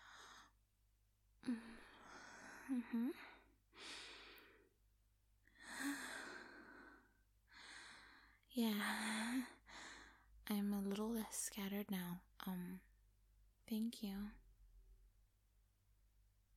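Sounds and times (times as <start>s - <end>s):
slow deep breaths with soft sighing: 1.4s - 4.8s, 5.5s - 10.4s
speech: 2.7s - 3.4s, 8.6s - 9.6s, 10.5s - 12.9s, 13.7s - 14.4s.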